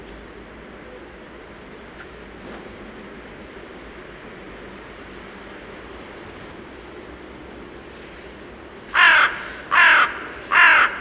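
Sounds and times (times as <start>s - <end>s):
carrion crow giving harsh rasping caws: 8.9s - 10.9s.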